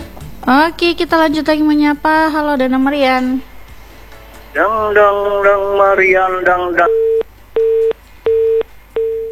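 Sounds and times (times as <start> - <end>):
speech: 0.5 - 3.5, 4.5 - 7.2
phone busy tone beeps after a dropped phone call: 6.8 - 9.3.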